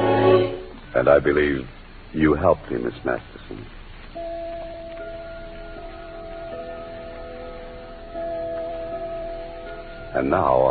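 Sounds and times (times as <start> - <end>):
speech: 1.0 - 3.8, 10.1 - 10.6
clock chime ringing a slow melody of resonant bell tones: 4.2 - 10.6.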